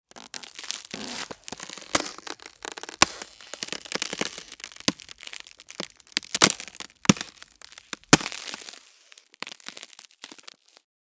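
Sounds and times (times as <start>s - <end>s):
ice crunching: 0.0s - 10.8s.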